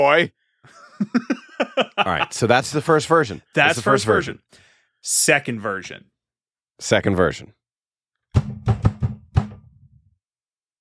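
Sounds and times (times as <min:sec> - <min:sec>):
speech: 0:00.0 - 0:06.1, 0:06.8 - 0:07.6
laughter: 0:00.7 - 0:02.8
heavy booming thuds of someone kicking a door in: 0:08.4 - 0:09.8.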